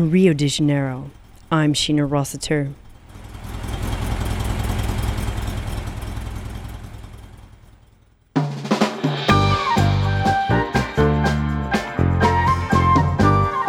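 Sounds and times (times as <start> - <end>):
speech: 0.0 - 2.8
old Volkswagen Kombi van engine idling in Rio de Janeiro: 0.0 - 8.4
music: 8.4 - 13.6.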